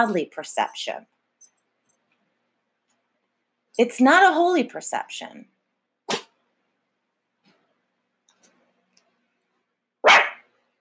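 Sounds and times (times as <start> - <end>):
speech: 0.0 - 1.1, 3.8 - 5.6
dog barking: 6.1 - 6.3, 10.0 - 10.4.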